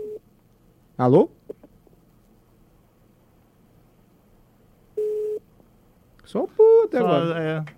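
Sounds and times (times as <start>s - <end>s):
steady telephone line tone: 0.0s - 0.2s, 5.0s - 5.4s
low quiet hum: 0.0s - 7.7s
speech: 1.0s - 1.4s, 6.3s - 7.7s.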